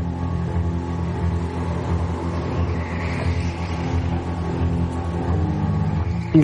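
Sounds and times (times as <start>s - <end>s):
go-kart engine droning while driving laps around a circuit: 0.0s - 6.4s.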